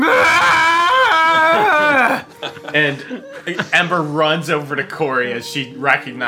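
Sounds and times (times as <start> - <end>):
loud drawn-out strained human yell: 0.0 - 2.3
laughter: 0.0 - 4.1
speech: 2.8 - 6.2.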